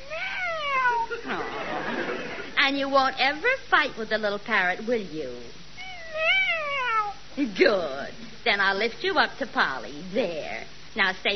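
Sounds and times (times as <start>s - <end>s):
cat meowing: 0.0s - 1.1s, 5.8s - 7.2s
faint noise: 0.0s - 11.3s
laughter: 1.1s - 2.6s
speech: 2.7s - 5.6s, 7.4s - 11.3s.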